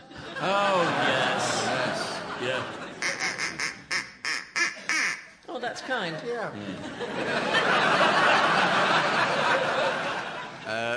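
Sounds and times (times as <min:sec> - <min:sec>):
laughter: 0:00.0 - 0:04.0, 0:06.2 - 0:10.9
duck quacking: 0:03.0 - 0:05.3
speech: 0:05.8 - 0:10.1.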